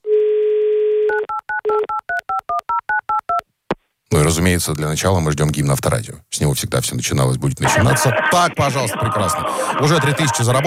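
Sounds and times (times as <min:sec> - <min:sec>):
telephone dial tone: 0:00.0 - 0:01.9
speech: 0:04.3 - 0:10.6.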